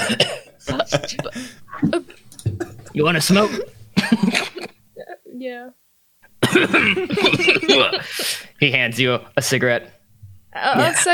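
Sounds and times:
laughter: 0.0 - 4.8, 6.4 - 9.8, 10.6 - 11.1
person coughing raspily: 0.0 - 4.8, 6.4 - 8.4
speech: 0.1 - 1.5, 3.0 - 3.7, 6.5 - 10.0, 10.6 - 11.1.

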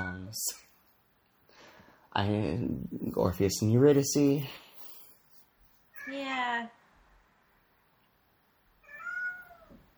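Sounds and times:
speech: 0.3 - 0.6, 2.2 - 4.6
domestic cat meowing: 8.8 - 9.9.

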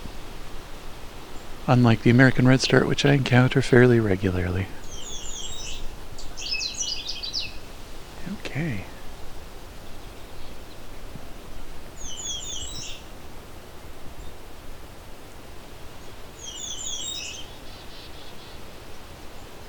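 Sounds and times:
speech: 1.7 - 4.8
Canada warbler singing high rapid notes: 4.1 - 7.6, 12.0 - 13.0, 16.4 - 17.6.

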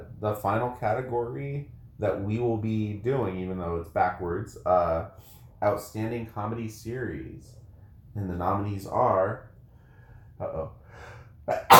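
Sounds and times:
speech: 0.2 - 7.6, 8.2 - 9.5, 10.4 - 11.7
sharp breathy inhales before a sneeze: 5.2 - 5.6, 9.6 - 11.4
allergic sneeze: 11.5 - 11.7.

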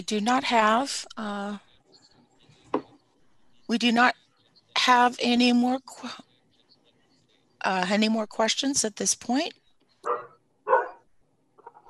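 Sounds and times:
speech: 0.0 - 1.7, 3.7 - 4.2, 4.8 - 6.3, 7.6 - 9.6
dog barking: 10.0 - 11.8.

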